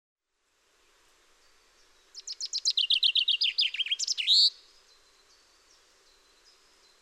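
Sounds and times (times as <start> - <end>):
common chaffinch singing a bright rattling phrase: 1.4 - 6.9.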